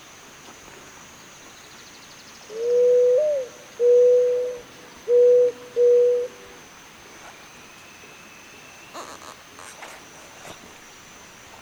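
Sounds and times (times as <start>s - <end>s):
Zenaida dove giving low even coos: 2.5s - 6.4s.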